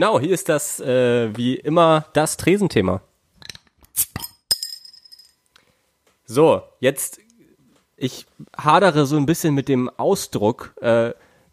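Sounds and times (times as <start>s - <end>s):
speech: 0.0s - 3.1s, 6.3s - 7.2s, 8.0s - 11.2s
glasses holding alcoholic drinks clinking in a toast: 4.2s - 5.4s.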